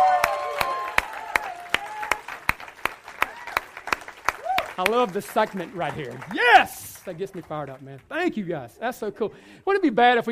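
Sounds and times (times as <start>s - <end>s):
audience whooping and cheering at a live event: 0.0s - 2.4s, 3.2s - 4.9s, 6.3s - 6.9s
audience applause at a live event: 0.0s - 8.3s
speech: 4.8s - 10.3s.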